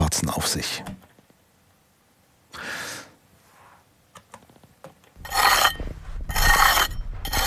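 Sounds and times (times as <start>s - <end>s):
trowel scraping soil walls of an excavation pit: 5.2s - 7.4s.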